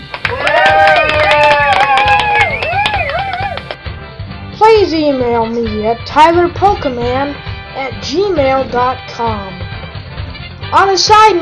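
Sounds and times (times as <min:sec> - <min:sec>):
crowd clapping: 0:00.0 - 0:03.8
speech: 0:05.2 - 0:09.6, 0:10.7 - 0:11.4.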